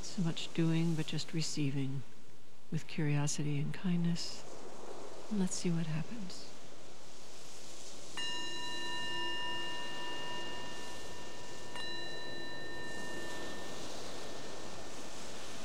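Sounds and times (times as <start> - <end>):
steady soft rushing background: 0.0 - 15.6
speech: 0.2 - 4.6, 5.3 - 6.5
meditation bell ringing: 8.1 - 15.6.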